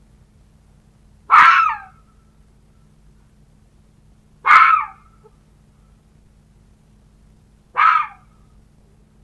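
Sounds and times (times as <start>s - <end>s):
faint low hum: 0.0s - 9.2s
red fox giving harsh hoarse barks: 1.3s - 2.0s, 4.4s - 5.4s, 7.7s - 8.3s.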